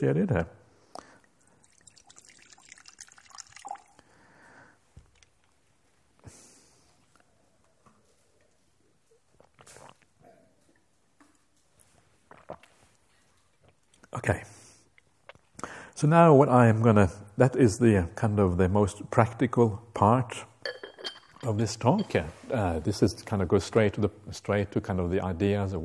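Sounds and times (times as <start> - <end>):
speech: 0.0 - 0.6, 16.0 - 20.8, 21.4 - 25.8
speaker drinking water: 0.6 - 7.4, 9.1 - 10.9, 11.8 - 15.9.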